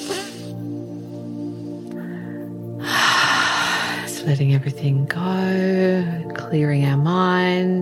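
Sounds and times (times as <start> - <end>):
deep breath in through the nose and out through the mouth: 0.1 - 4.2
speech: 4.3 - 7.8.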